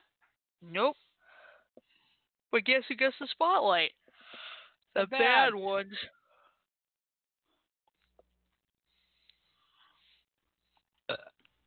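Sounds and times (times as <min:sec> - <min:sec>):
speech: 0:00.6 - 0:01.1, 0:02.5 - 0:04.0, 0:05.0 - 0:06.2, 0:11.1 - 0:11.3
drawn-out low gravelly burp: 0:11.1 - 0:11.4.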